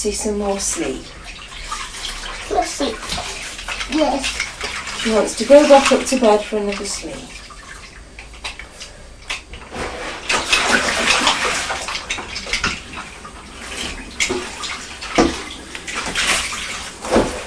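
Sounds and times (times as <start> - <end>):
speech: 0.0 - 1.3, 2.5 - 7.4
tap water gushing into a washing-up bowl: 0.2 - 9.7, 10.3 - 17.4.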